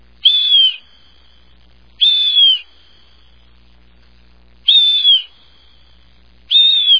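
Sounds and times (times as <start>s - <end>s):
blue jay calling: 0.2s - 0.8s, 2.0s - 2.7s, 6.5s - 6.9s.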